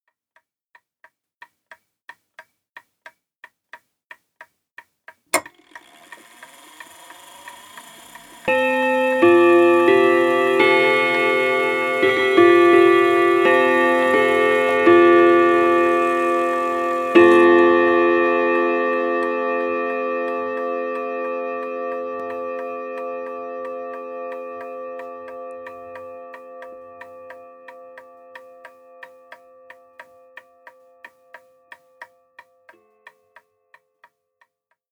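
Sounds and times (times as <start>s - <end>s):
group of clock bells: 5.4s - 29.4s.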